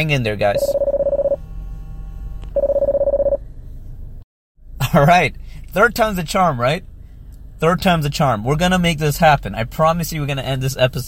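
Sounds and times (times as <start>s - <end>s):
speech: 0.0s - 0.8s, 5.0s - 6.9s, 7.6s - 11.0s
electronic phone ringtone of incoming call warbling: 0.5s - 1.4s, 2.6s - 3.4s.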